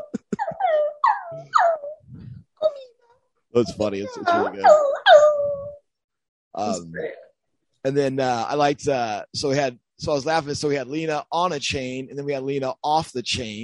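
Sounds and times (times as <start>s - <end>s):
person imitating a dog whimpering: 0.0s - 3.0s, 3.6s - 5.8s
speech: 3.6s - 5.0s, 6.6s - 7.2s, 7.8s - 13.6s.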